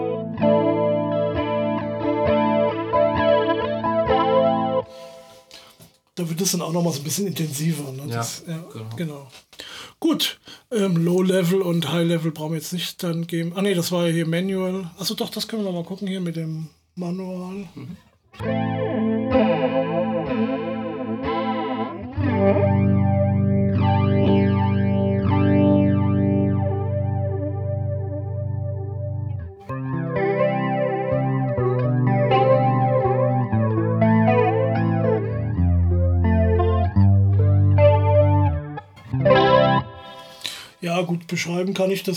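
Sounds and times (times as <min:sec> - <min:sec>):
electric guitar playing chords through a Boss MD-200 modulation pedal: 0:00.0 - 0:05.4, 0:18.4 - 0:40.7
speech: 0:06.2 - 0:18.8, 0:41.3 - 0:42.1.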